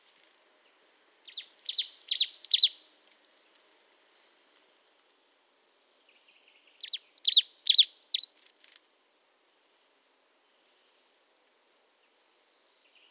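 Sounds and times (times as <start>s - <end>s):
marsh tit Poecile palustris calling: 1.4s - 2.8s, 6.8s - 8.2s.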